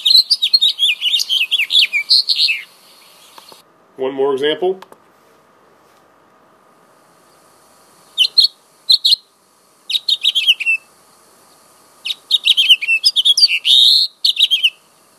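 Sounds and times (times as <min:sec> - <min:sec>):
house finch singing a bright warbling song: 0:00.0 - 0:03.6, 0:08.2 - 0:09.2, 0:09.9 - 0:10.9, 0:12.0 - 0:14.8
speech: 0:04.0 - 0:04.9.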